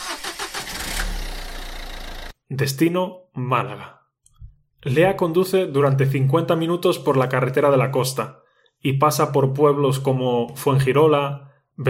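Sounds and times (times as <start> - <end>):
car engine cranking, starting and idling: 0.0 - 2.4
speech: 2.5 - 4.0, 4.8 - 11.8.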